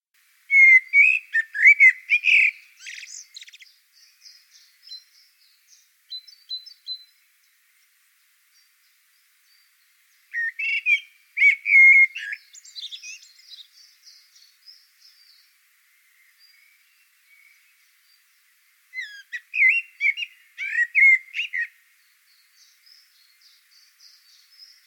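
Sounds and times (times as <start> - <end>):
blackbird voice: 0.5 - 7.2, 10.3 - 18.2, 18.9 - 24.8.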